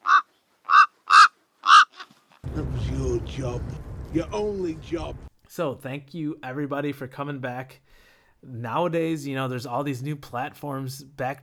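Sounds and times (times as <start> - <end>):
raven cawing: 0.0 - 2.1
speech: 2.6 - 11.4.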